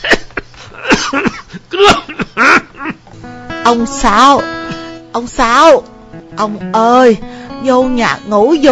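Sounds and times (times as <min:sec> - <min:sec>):
old man coughing and choking on ditch water: 0:00.0 - 0:03.1
speech: 0:03.7 - 0:04.6, 0:05.2 - 0:08.7.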